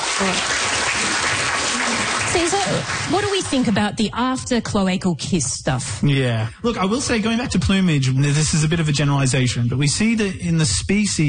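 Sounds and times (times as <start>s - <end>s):
audience applause: 0.0s - 3.8s
speech: 0.2s - 0.8s, 2.4s - 11.2s.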